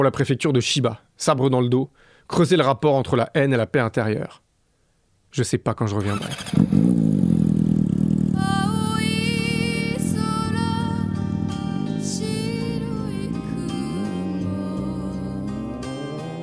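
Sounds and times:
speech: 0.0s - 4.4s, 5.3s - 7.0s
Yamaha R6 sport motorcycle engine revving and pulling away: 6.0s - 16.0s.

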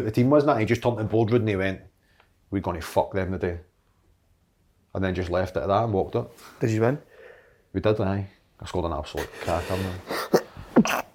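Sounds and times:
speech: 0.0s - 1.9s, 2.5s - 3.7s, 4.9s - 7.1s, 7.7s - 11.0s
person sneezing: 9.4s - 11.1s.

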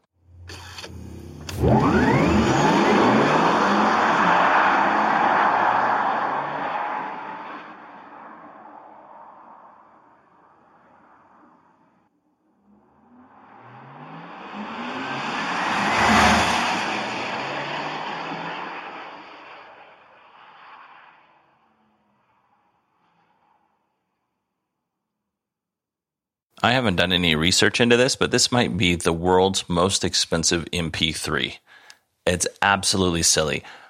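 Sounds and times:
synthetic electric sports car driving sound add-on: 0.2s - 23.7s
speech: 1.6s - 2.1s, 26.6s - 33.8s.

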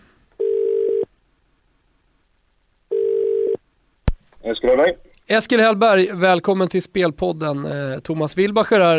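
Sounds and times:
outgoing telephone call ringback tones: 0.4s - 1.1s, 2.9s - 3.6s
speech: 4.5s - 8.9s.

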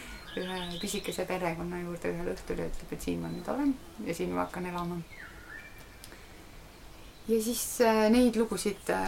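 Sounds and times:
faint birdsong outdoors: 0.0s - 9.0s
speech: 0.4s - 5.3s, 7.2s - 9.0s.

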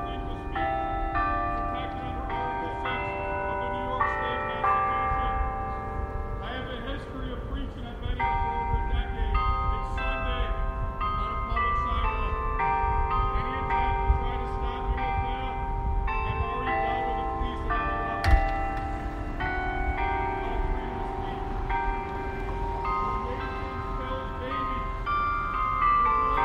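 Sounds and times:
man protesting: 0.0s - 0.6s, 1.6s - 5.6s, 6.4s - 12.4s, 13.2s - 15.7s, 20.2s - 21.8s, 23.1s - 25.1s
church bells ringing: 0.0s - 26.4s.

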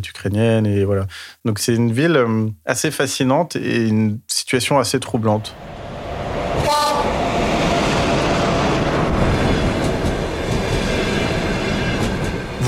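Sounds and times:
speech: 0.0s - 5.8s
train rolling along the rails: 5.5s - 12.6s
train horn blast: 6.6s - 7.2s.

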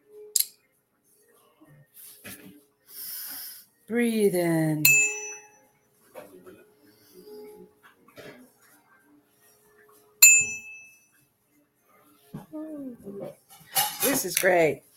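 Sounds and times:
speech: 3.9s - 5.1s, 14.2s - 14.9s
loud bright bell strike: 4.9s - 5.5s, 10.2s - 11.0s
soft tinkling bells: 4.9s - 5.6s, 10.2s - 11.1s.

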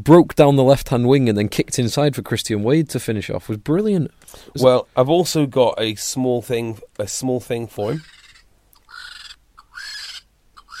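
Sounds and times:
speech: 0.0s - 8.2s
vulture call sound effect: 7.9s - 10.7s.

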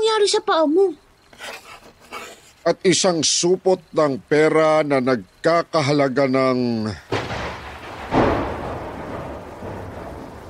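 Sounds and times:
speech: 0.2s - 1.6s, 2.6s - 7.1s
heavy downpour of rain: 6.8s - 10.4s
sharp loud thunderclap: 7.1s - 10.4s.

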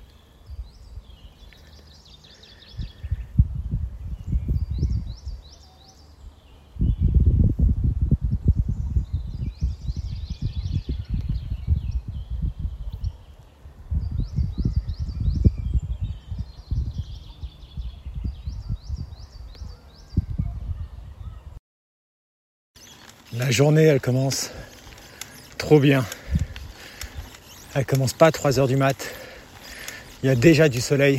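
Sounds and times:
small birds chirping and trilling outdoors on a sunny morning: 0.0s - 7.6s, 8.3s - 21.6s, 22.8s - 31.1s
low rustling and crunching noises: 22.8s - 31.1s
speech: 23.5s - 24.6s, 25.7s - 26.4s, 27.8s - 29.2s, 30.2s - 31.1s.

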